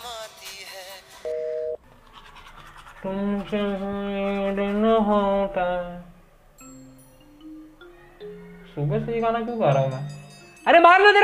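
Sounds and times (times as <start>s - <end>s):
phone line electronic tone of an unanswered call: 1.3s - 1.8s
speech: 3.0s - 6.0s, 8.8s - 11.2s
faint warbling melodic phone sound: 6.6s - 10.8s.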